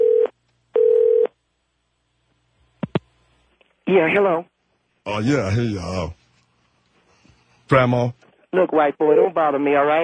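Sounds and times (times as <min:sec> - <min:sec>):
telephone tones while placing a call: 0:00.0 - 0:01.4
speech: 0:03.9 - 0:06.2, 0:07.7 - 0:10.0.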